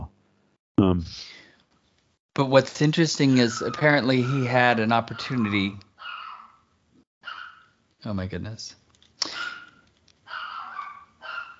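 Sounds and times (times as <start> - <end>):
speech: 1.0 - 1.4, 2.4 - 5.9, 8.0 - 9.4
puppy barking and yipping: 3.3 - 6.6, 7.2 - 7.8, 9.3 - 11.5.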